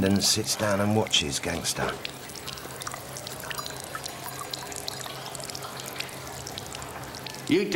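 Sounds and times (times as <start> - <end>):
speech: 0.0 - 2.3, 7.5 - 7.7
urine trickling and splashing into a champagne glass at a urinal: 1.9 - 7.5.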